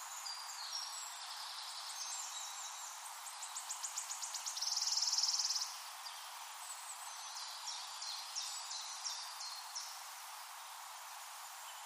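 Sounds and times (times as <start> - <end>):
wood warbler song with shivering trill: 0.0 - 11.8.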